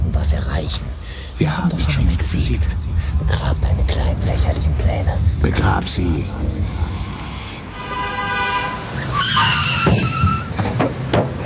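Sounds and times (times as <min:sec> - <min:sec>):
car engine rumbling: 0:00.0 - 0:11.4
speech: 0:00.2 - 0:07.1
car skidding with tyres screeching: 0:04.6 - 0:11.4
brief horn-like blare: 0:07.7 - 0:09.4.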